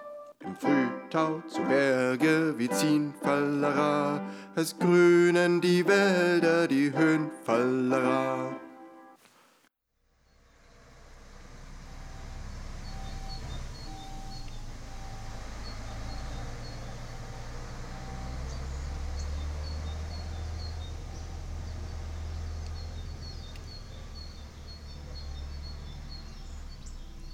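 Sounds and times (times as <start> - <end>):
speech: 0.6 - 8.6
garbage truck engine idling: 10.2 - 27.3
birds chirping: 10.3 - 27.3
garbage truck reversing beeper: 11.6 - 22.0.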